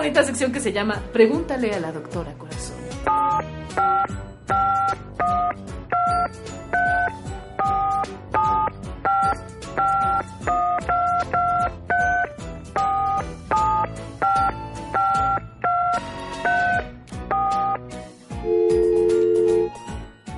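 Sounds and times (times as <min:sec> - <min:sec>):
speech: 0:00.0 - 0:07.4
touch-tone beeps dialing a phone number from Spain: 0:03.1 - 0:17.8, 0:18.5 - 0:19.7.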